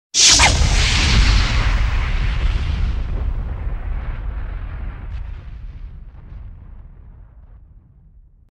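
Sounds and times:
synthesized fire whip crack: 0.1 - 3.1
explosion tail: 0.2 - 8.4.

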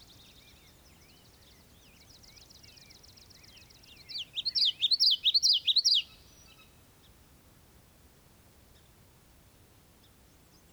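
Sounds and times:
bird song of rapid high chirps in a European marsh: 0.0 - 6.7.

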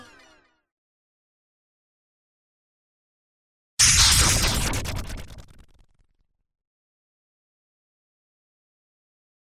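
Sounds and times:
laser zaps: 3.8 - 6.1.

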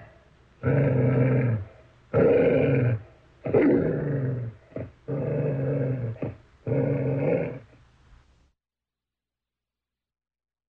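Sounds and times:
dog growling: 0.0 - 7.8.

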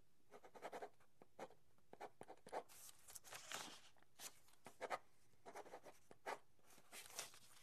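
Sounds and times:
pen writing: 0.3 - 2.7, 4.7 - 6.4.

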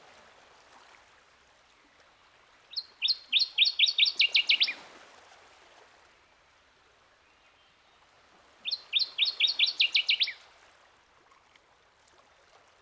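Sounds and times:
northern waterthrush singing staccato phrases: 2.7 - 4.8, 8.6 - 10.4.

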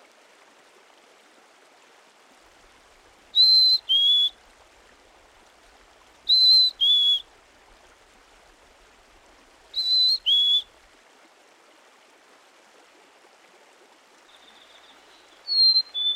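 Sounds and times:
Black-capped chickadee whistles: 3.4 - 4.4, 6.3 - 7.2, 9.8 - 10.7, 14.3 - 16.1.

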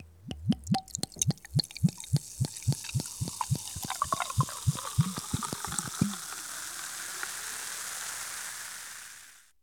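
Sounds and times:
pop bottle popping open in a kitchen: 0.0 - 7.4.

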